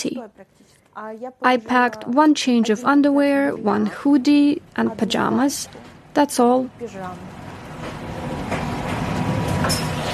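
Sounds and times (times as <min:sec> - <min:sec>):
speech: 0:00.0 - 0:08.6
train rolling along the rails: 0:03.5 - 0:10.1.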